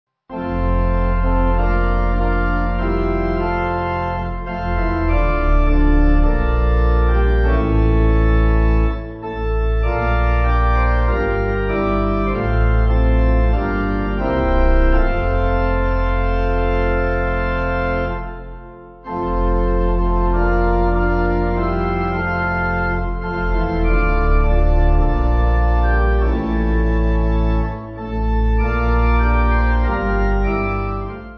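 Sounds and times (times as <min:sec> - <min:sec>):
pipe music: 0:00.3 - 0:31.3.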